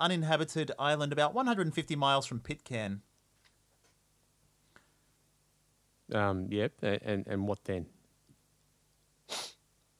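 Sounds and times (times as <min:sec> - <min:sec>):
speech: 0:00.0 - 0:03.1, 0:06.1 - 0:08.0
quick sharp nervous sniff: 0:09.3 - 0:09.6.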